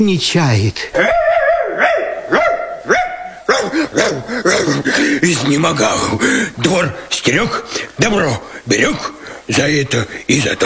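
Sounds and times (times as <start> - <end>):
speech: 0.0 - 1.2, 3.7 - 10.6
dog barking excitedly: 1.0 - 5.0
laughter: 3.5 - 6.2.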